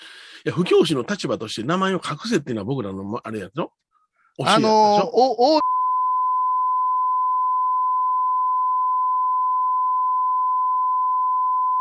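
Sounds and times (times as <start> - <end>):
speech: 0.4 - 3.8, 4.4 - 5.7
steady censor bleep tone: 5.6 - 11.7.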